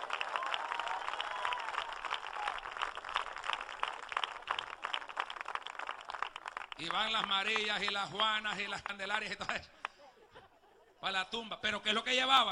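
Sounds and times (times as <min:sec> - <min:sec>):
scattered applause from a gathered crowd: 0:00.0 - 0:09.0
speech: 0:06.8 - 0:09.8, 0:11.0 - 0:12.5
laughter: 0:09.4 - 0:11.2.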